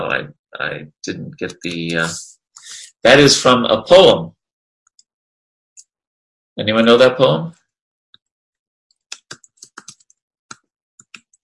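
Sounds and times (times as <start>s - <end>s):
speech: 0.0s - 4.4s, 6.6s - 7.6s
typing on a computer keyboard: 9.2s - 10.1s.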